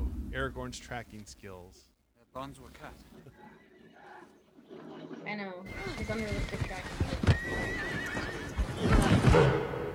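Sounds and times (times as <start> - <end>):
speech: 0.4 - 3.4, 4.7 - 8.0, 8.8 - 9.7
horse hooves shuffling and thudding: 2.7 - 9.7
horse neighing with breathy snorts: 5.7 - 9.4.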